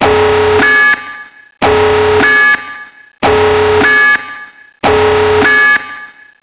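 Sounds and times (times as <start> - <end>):
base alarm: 0.0 - 6.4.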